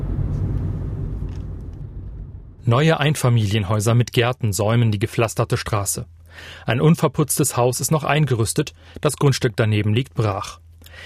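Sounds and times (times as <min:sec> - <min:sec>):
car driving: 0:00.0 - 0:03.0
speech: 0:02.7 - 0:11.0.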